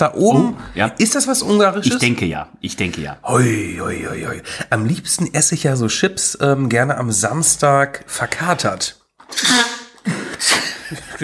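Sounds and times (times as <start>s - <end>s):
speech: 0.0s - 9.6s, 10.9s - 11.2s
breathy snuffling: 3.3s - 4.8s
loud sneeze: 9.3s - 10.8s.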